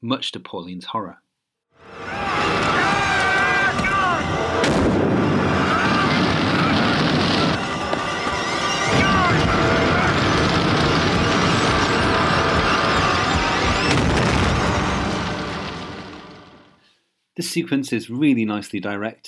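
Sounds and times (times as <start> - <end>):
speech: 0.0 - 1.2, 17.4 - 19.2
shouting cries: 1.9 - 15.5
sustained roaring crackling blaze: 1.9 - 16.8
sharp bangs: 2.1 - 16.8
car explosion: 2.3 - 16.8.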